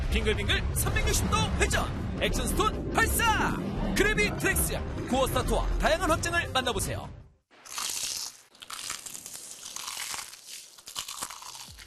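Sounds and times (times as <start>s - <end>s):
speech: 0.1s - 7.2s
crumb-coated crispy fried chicken being bitten: 7.6s - 11.8s.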